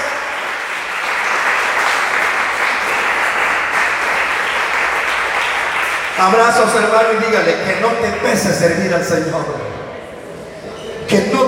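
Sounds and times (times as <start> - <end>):
audience clapping hands in church: 0.0 - 6.8
speech: 6.2 - 9.8.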